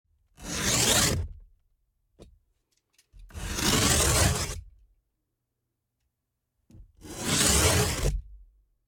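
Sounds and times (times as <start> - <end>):
craft knife cutting a cardboard box: 0.3 - 1.4, 3.2 - 4.7, 6.7 - 8.4.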